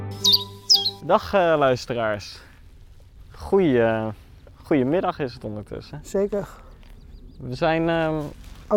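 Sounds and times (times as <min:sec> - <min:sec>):
small orange-breasted songbird chirping: 0:00.1 - 0:01.2, 0:05.9 - 0:08.4
speech: 0:01.1 - 0:02.5, 0:03.4 - 0:06.6, 0:07.4 - 0:08.7.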